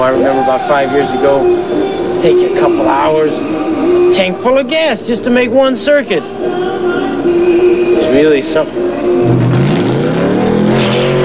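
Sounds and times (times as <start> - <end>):
speech: 0.0 - 6.6, 7.2 - 9.4
car engine revving: 9.0 - 11.2.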